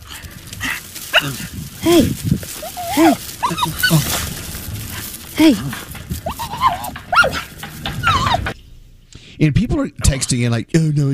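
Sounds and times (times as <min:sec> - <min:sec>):
dog whining and yelping: 0:00.6 - 0:02.0, 0:02.6 - 0:04.3, 0:06.2 - 0:08.6
speech: 0:01.2 - 0:04.2, 0:05.4 - 0:05.9, 0:09.4 - 0:11.1.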